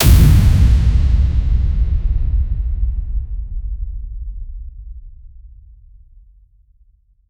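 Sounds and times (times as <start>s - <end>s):
violent explosive burst of air: 0.0s - 3.6s.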